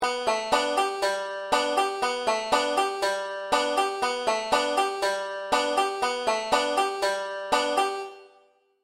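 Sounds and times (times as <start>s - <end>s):
five-string banjo pull-off from B to A: 0.0s - 8.0s.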